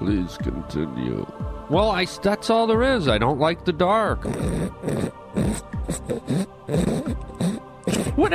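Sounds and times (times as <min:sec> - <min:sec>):
speech: 0:00.0 - 0:07.0, 0:08.2 - 0:08.3
harsh raspy throat clearing: 0:04.2 - 0:08.3.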